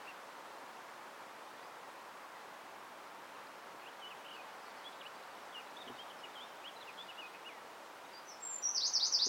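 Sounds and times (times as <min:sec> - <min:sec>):
light background noise: 0:00.0 - 0:09.2
Eurasian wren Troglodytes troglodytes giving high rapid rattling notes: 0:08.6 - 0:09.2.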